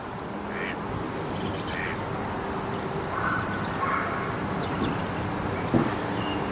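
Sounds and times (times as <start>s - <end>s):
outdoor wind rumble: 0.0s - 6.5s
ducks quacking: 0.5s - 0.8s, 1.7s - 2.0s.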